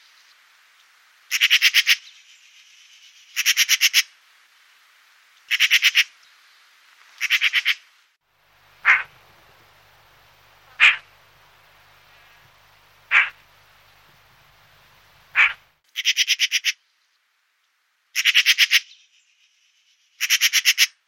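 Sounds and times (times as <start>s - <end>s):
Pica pica calling: 1.3s - 2.0s, 5.5s - 6.1s, 7.2s - 7.8s, 8.8s - 9.7s, 10.4s - 11.2s, 12.0s - 13.5s, 15.2s - 16.8s, 18.2s - 18.9s, 20.2s - 20.9s.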